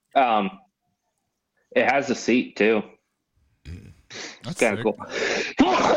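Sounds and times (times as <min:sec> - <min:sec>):
speech: 0:00.2 - 0:00.6, 0:01.7 - 0:02.9, 0:04.4 - 0:05.9
breathy gasping: 0:03.7 - 0:05.6.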